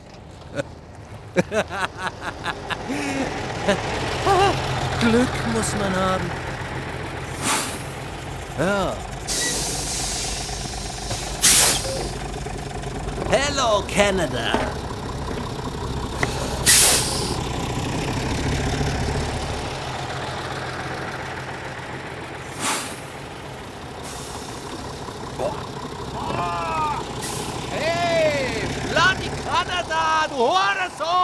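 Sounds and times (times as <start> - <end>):
large bus engine idling at a bus stop in a small town: 0.0 - 31.2
laughter: 0.2 - 6.4, 7.3 - 9.1, 13.0 - 17.4, 25.4 - 31.2
speech: 0.5 - 0.8, 1.4 - 6.5, 8.6 - 9.1, 13.3 - 14.8
bus air brakes hissing: 6.4 - 18.6, 22.3 - 26.2, 27.0 - 27.7.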